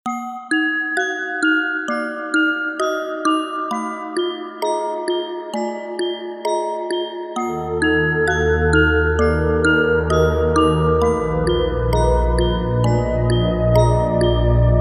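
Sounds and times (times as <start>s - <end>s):
music box game over jingle: 0.1s - 14.7s.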